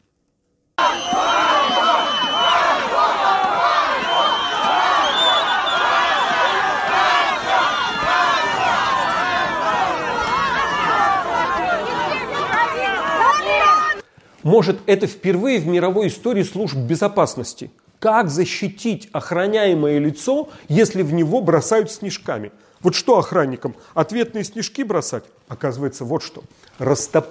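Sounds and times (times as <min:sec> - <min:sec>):
angry crowd shouting at the city hospital in Volokolamsk, Moscow Region, Russia: 0:00.8 - 0:14.0
speech: 0:14.5 - 0:27.3.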